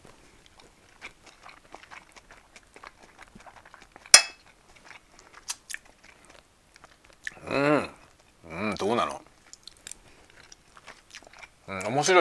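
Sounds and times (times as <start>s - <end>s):
chewing fried rice: 0.0s - 12.1s
cutlery clinking: 4.2s - 4.4s
speech: 12.0s - 12.1s.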